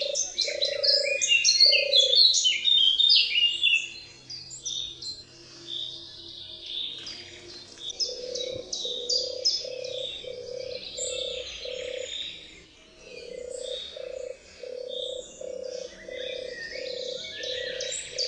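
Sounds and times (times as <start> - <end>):
European turtle dove purring in short low bursts: 0.0 - 2.3, 8.0 - 18.2
other songbirds chirping and trilling: 0.0 - 18.2.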